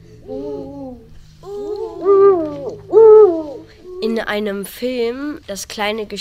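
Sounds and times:
steady low hum: 0.0s - 4.4s
Eurasian eagle-owl hooting: 0.4s - 4.0s
speech: 4.2s - 6.1s.

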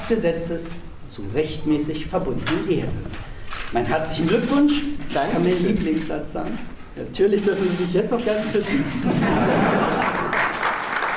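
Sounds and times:
speech: 0.1s - 10.0s
laughter: 8.6s - 10.8s
wedding guests cheering at a registry office: 9.2s - 11.1s
wedding guests applauding at a registry office: 9.4s - 11.1s.

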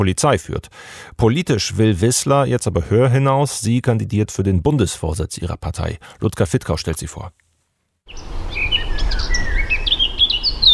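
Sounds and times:
speech: 0.0s - 7.4s
birds chirping and singing in a forest: 8.1s - 10.7s.

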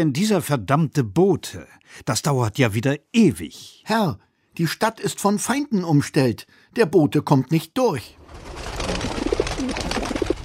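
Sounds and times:
speech: 0.0s - 9.9s
messenger pigeon cooing: 8.7s - 10.4s.

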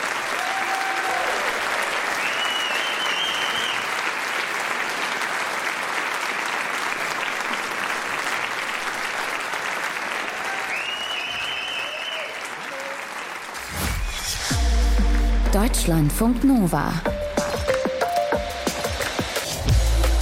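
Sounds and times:
large audience applause and cheering: 0.0s - 15.4s, 17.6s - 20.2s
speech: 15.8s - 17.2s.

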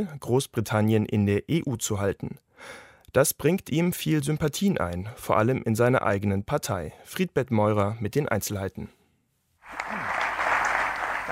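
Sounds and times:
speech: 0.0s - 9.0s
audience applauding after a speech: 9.6s - 11.2s.

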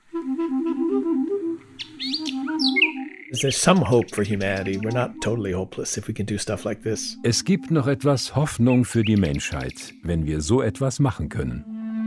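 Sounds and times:
sustained clarinet melody: 0.0s - 10.2s, 11.3s - 12.0s
nightingale trilling and chirping: 1.8s - 10.2s
speech: 3.3s - 11.7s.

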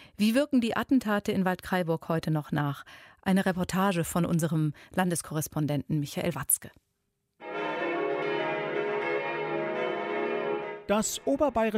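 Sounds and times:
speech: 0.2s - 6.9s, 10.9s - 11.7s
bronze Catholic church bells pealing for mass at Pentecost in Waldkraiburg, Upper Bavaria: 7.4s - 11.3s.

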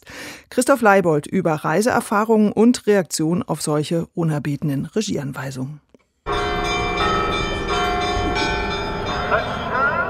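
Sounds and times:
speech: 0.5s - 5.9s
church bells pealing in Jerusalem: 6.3s - 10.0s.

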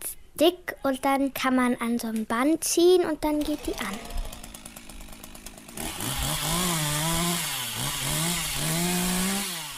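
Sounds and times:
speech: 0.4s - 4.2s
chainsaw engine revving: 3.3s - 9.7s.

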